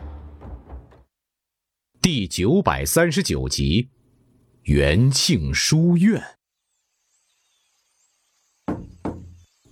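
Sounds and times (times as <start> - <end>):
speech: 2.1 - 3.9, 4.7 - 6.4
knocking on a door: 8.7 - 9.4.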